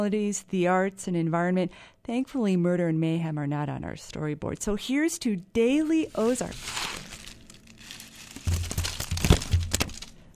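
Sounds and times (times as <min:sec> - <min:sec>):
speech: 0:00.0 - 0:07.0
paper confetti cut from a script falling on a microphone: 0:06.0 - 0:10.2.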